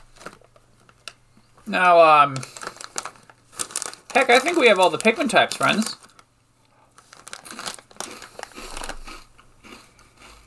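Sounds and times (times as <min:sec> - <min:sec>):
plastic wrapper of a package of cookies-and-cream cookies crinkling: 0:00.0 - 0:09.4
speech: 0:01.7 - 0:02.6, 0:04.2 - 0:06.0.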